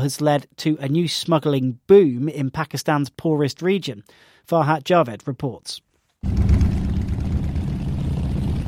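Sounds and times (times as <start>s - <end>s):
speech: 0.0s - 6.5s
thousands of motorbike engines rumbling on Pakistan's border with Iran: 6.3s - 8.6s.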